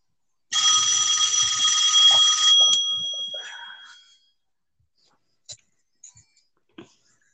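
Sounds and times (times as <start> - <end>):
left-behind phone ringing with a bright buzzing electronic tone: 0.5 - 4.0.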